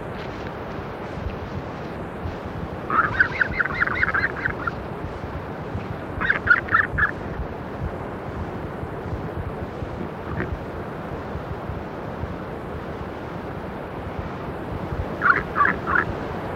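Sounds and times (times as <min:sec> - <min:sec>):
steady wind-like rushing noise: 0:00.0 - 0:16.5
Southern royal albatross harsh honking calls: 0:02.9 - 0:04.8, 0:06.2 - 0:07.1, 0:15.2 - 0:16.1.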